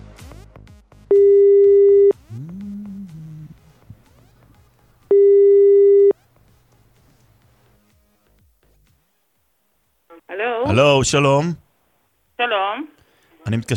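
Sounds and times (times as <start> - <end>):
loud steady telephone ringback tones of a call to a shop: 1.1 - 2.1, 5.1 - 6.1
speech: 11.0 - 11.6, 13.5 - 13.7.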